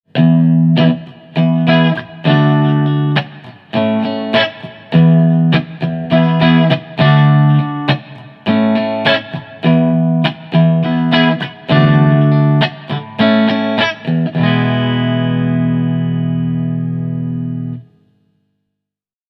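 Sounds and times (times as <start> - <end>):
Stratocaster electric guitar with modern clean tone: 0.1 - 18.2.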